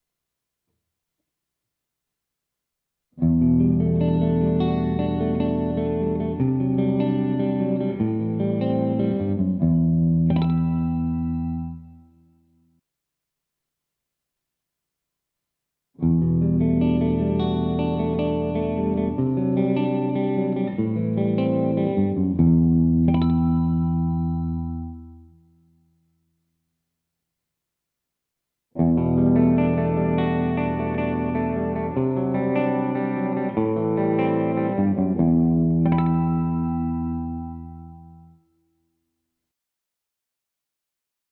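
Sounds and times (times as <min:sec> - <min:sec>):
clean electric guitar through a handcrafted custom humbucker pickup: 0:03.2 - 0:12.1, 0:16.0 - 0:25.4, 0:28.8 - 0:38.4.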